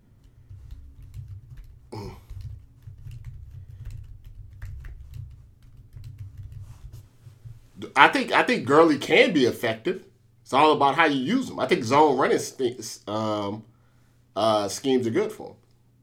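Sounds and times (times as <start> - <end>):
low constant hum: 0.0 - 16.0
typing on a computer keyboard: 0.2 - 7.0
speech: 7.9 - 13.7, 14.4 - 15.6.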